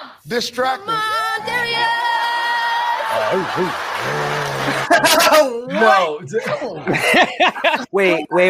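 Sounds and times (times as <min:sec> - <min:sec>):
speech: 0:00.3 - 0:02.1, 0:03.1 - 0:08.4
person chuckling: 0:03.1 - 0:05.5
person imitating dog bark with yelping vocal bursts: 0:03.1 - 0:05.6.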